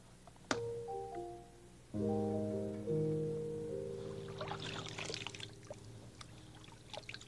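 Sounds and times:
soft sustained musical tones: 0:00.0 - 0:07.2
clean water pouring and trickling for potting a plant: 0:04.4 - 0:07.2.

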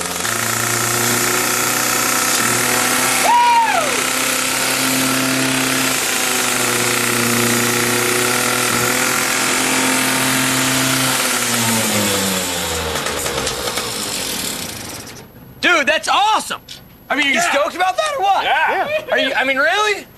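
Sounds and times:
motorcycle engine revving at full speed: 0:00.0 - 0:15.2
speech: 0:17.2 - 0:20.1.

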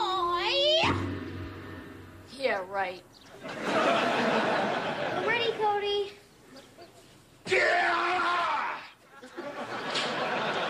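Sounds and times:
speech: 0:00.8 - 0:01.1, 0:02.5 - 0:04.3
laughter: 0:03.3 - 0:05.6, 0:09.0 - 0:10.6
person karate-style yelling: 0:07.5 - 0:08.9.

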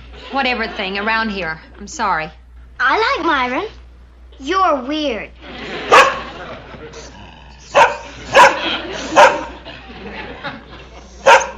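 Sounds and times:
laughter: 0:00.0 - 0:01.6, 0:05.4 - 0:11.5
speech: 0:00.3 - 0:03.8, 0:04.4 - 0:05.6
low murmuring: 0:05.4 - 0:11.3
dog barking: 0:05.8 - 0:06.3, 0:07.7 - 0:09.6, 0:11.2 - 0:11.5.

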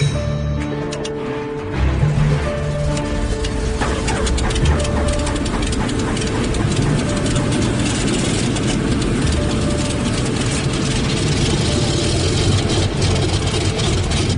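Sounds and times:
C-46 aircraft piston engines starting up: 0:00.9 - 0:14.3.

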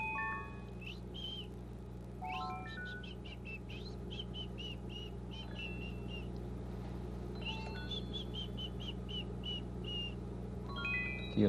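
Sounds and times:
caged yellow pet bird chirping and whistling: 0:00.0 - 0:01.6, 0:02.2 - 0:06.3, 0:07.4 - 0:10.2
steady low hum: 0:00.0 - 0:11.4.

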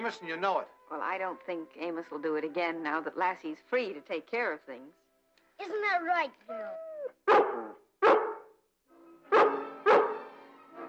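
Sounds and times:
speech: 0:00.0 - 0:05.0, 0:05.6 - 0:07.6
dog barking: 0:07.2 - 0:08.6, 0:09.3 - 0:10.8.

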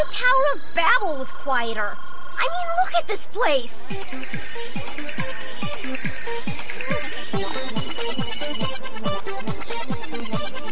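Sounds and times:
speech: 0:00.2 - 0:05.2
phone ringtone for an incoming call in a school classroom: 0:04.0 - 0:10.7.

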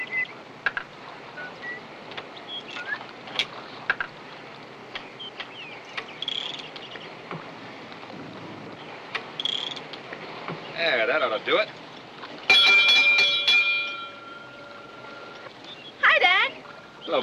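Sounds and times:
faint outdoor noise: 0:00.0 - 0:17.2
speech: 0:11.4 - 0:11.8
rough water warning bell ringing for park visitors in small skiffs: 0:12.5 - 0:15.4.

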